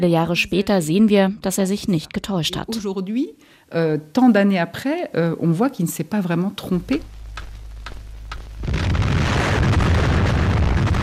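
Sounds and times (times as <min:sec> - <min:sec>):
speech: 0:00.0 - 0:07.2
atomic bomb detonation: 0:08.6 - 0:11.0.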